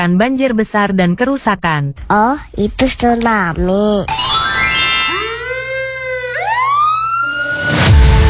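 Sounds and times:
speech: 0.0 - 4.3
fire engine siren wailing: 4.8 - 7.9.

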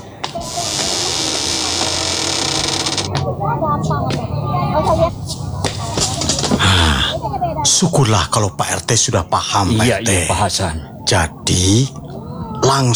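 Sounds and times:
metal gate creaking and scraping as it is pulled shut: 0.0 - 7.0
laughter: 0.0 - 12.9
steady hiss of noise: 0.0 - 12.9
speech: 3.4 - 5.4, 7.6 - 12.0, 12.7 - 12.9.

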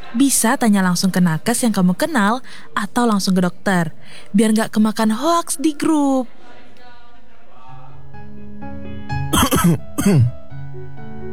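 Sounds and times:
speech: 0.1 - 6.4, 9.4 - 10.4
person coughing harshly: 9.4 - 10.4.

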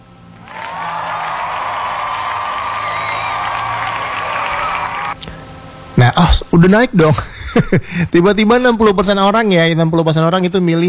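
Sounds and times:
crowd applause and cheering with whoops: 0.3 - 5.2
speech: 6.2 - 10.8.

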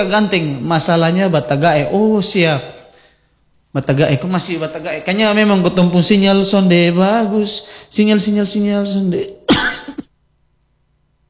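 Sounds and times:
speech: 0.0 - 2.8, 3.7 - 10.0
person coughing: 9.5 - 10.2.

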